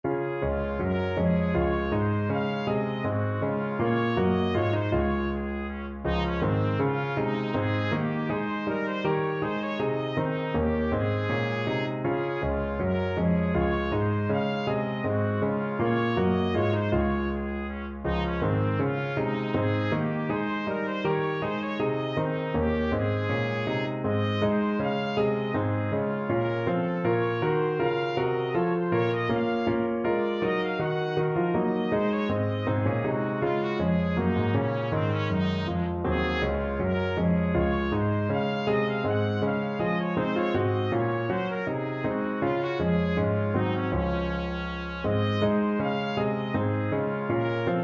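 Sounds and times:
trumpet playing a bouree: 0:00.1 - 0:47.8.

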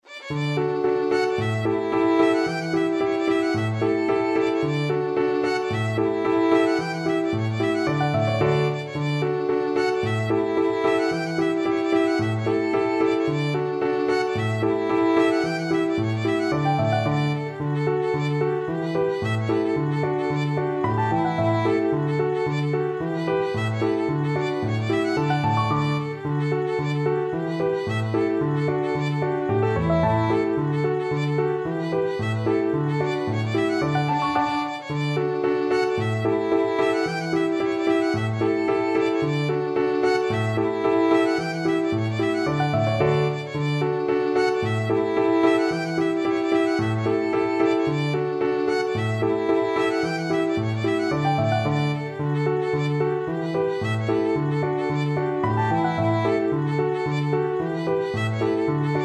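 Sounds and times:
violin playing a hornpipe: 0:00.0 - 0:59.0.

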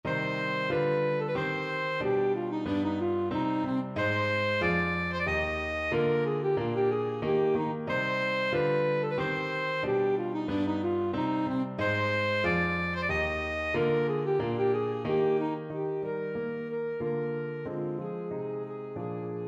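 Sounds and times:
alto saxophone melody: 0:00.0 - 0:19.4.

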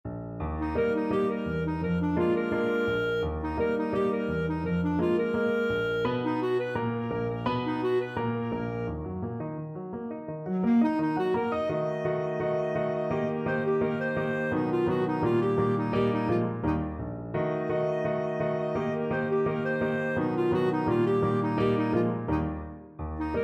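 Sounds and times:
clarinet playing a ragtime piece: 0:00.4 - 0:09.1, 0:10.4 - 0:23.4.

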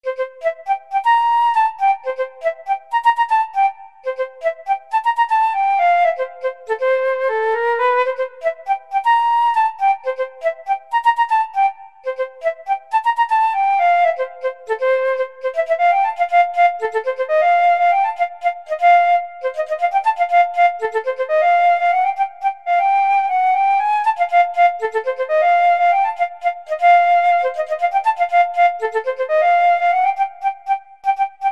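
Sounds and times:
funk study played on flute: 0:00.0 - 0:31.5.

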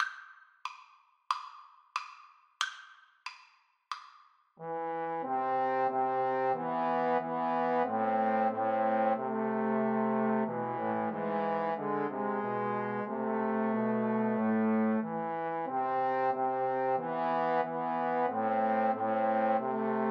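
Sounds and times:
trombone trio playing a spiritual: 0:04.6 - 0:20.0.

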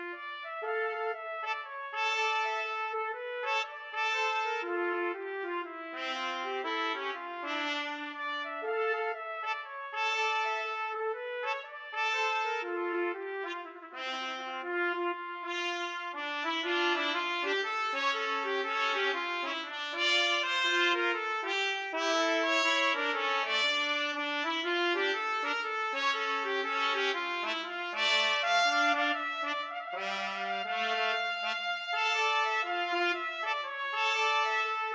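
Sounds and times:
trumpets playing: 0:00.2 - 0:34.9
trombone playing: 0:12.0 - 0:34.9.

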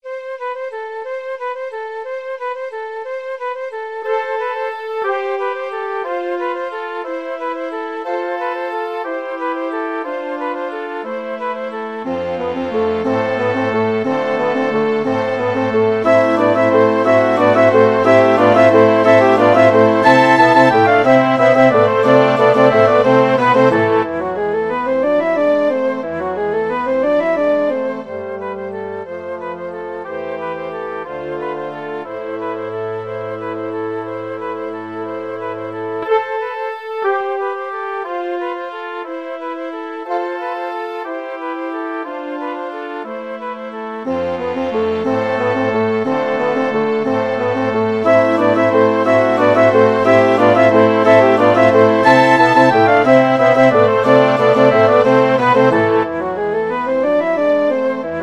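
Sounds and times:
orchestra playing: 0:04.1 - 0:58.2.

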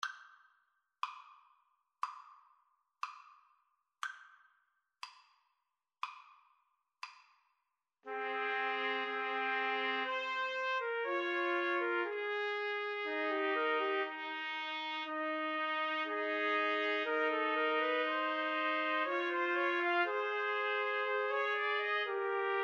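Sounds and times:
trumpet trio playing a romance: 0:08.1 - 0:22.6.

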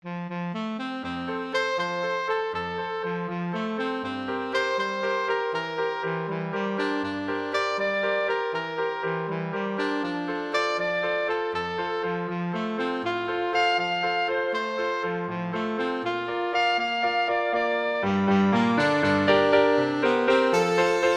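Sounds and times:
waltz for saxophone: 0:00.1 - 0:21.1.

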